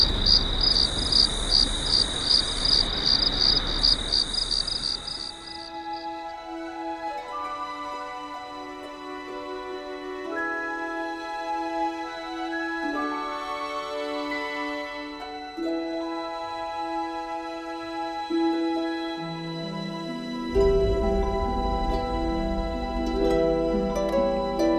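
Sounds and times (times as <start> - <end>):
cricket chirping: 0.0 - 6.3, 12.0 - 24.7
soft sustained musical tones: 5.0 - 24.7.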